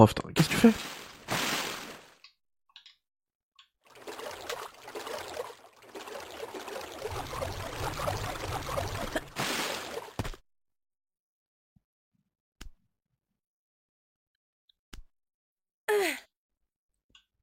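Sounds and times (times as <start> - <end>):
speech: 0.0 - 0.9
water flowing in a video game: 0.4 - 2.2, 3.8 - 10.4.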